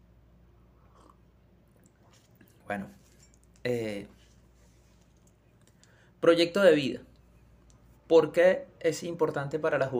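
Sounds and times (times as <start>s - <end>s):
low hum: 0.0s - 9.9s
wet swallowing noises: 0.7s - 2.7s
person sipping and slurping coffee: 0.8s - 2.6s
speech: 2.7s - 3.0s, 3.6s - 4.2s, 6.2s - 7.1s, 8.1s - 9.9s.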